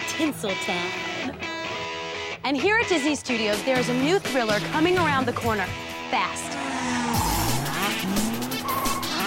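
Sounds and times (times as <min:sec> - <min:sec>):
speech: 0:00.2 - 0:01.5, 0:02.4 - 0:06.9
stunt show car engines roaring: 0:04.6 - 0:09.2
tires squealing from stunt show cars: 0:05.8 - 0:09.2.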